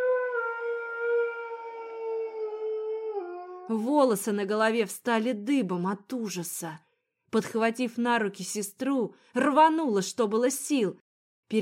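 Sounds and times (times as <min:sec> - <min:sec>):
long drawn-out howl in an underground corridor: 0:00.0 - 0:03.8
speech: 0:03.7 - 0:11.5.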